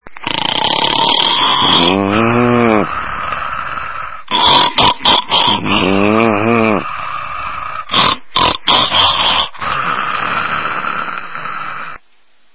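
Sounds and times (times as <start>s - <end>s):
snort: 0.1s - 12.0s.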